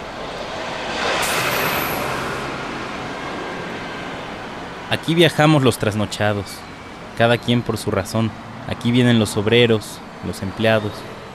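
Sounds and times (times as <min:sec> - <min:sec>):
city bus driving fast at night: 0:00.0 - 0:11.3
high whine from bus engine or brakes: 0:00.0 - 0:11.3
speech: 0:04.9 - 0:11.2.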